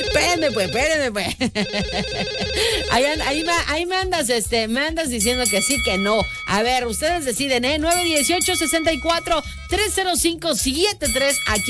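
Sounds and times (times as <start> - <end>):
electronic telephone ringtone in a studio booth: 0.0 - 0.9, 1.6 - 3.7, 5.2 - 10.1, 11.0 - 11.6
speech: 0.4 - 11.6.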